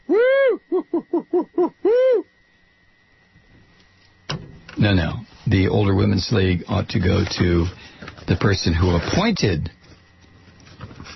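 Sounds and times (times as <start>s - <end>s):
owl hooting: 0.0s - 2.4s
speech: 4.8s - 9.8s.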